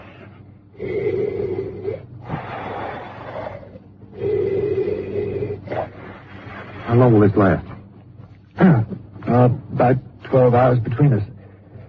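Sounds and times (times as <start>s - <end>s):
deep breathing through an oxygen mask from an oxygen bottle: 0.0s - 7.1s
speech: 0.8s - 1.0s, 6.9s - 7.7s, 9.9s - 11.4s.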